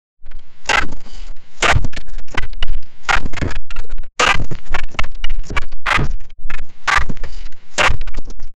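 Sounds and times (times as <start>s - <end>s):
anime style footstep: 1.6s - 8.4s.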